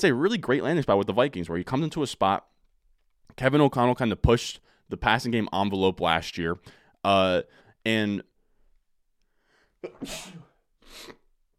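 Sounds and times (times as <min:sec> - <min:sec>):
speech: 0:00.0 - 0:02.5, 0:03.3 - 0:08.3, 0:09.8 - 0:11.2
person sneezing: 0:09.8 - 0:11.3.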